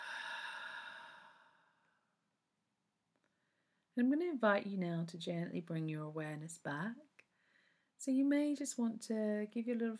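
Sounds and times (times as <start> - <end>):
slow soft exhale through the mouth after a nasal in-breath: 0.0 - 1.8
speech: 4.0 - 7.2, 8.0 - 9.9.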